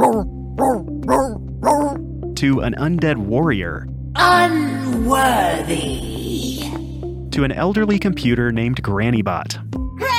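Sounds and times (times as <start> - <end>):
voice actor imitating a singing dog with howl-like sung yips: 0.0 - 2.0
speech: 2.4 - 6.6, 7.4 - 9.7.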